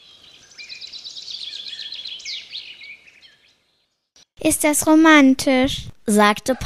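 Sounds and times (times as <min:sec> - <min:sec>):
dense chorus of birds chirping and singing: 0:00.0 - 0:04.3
speech: 0:04.4 - 0:06.6.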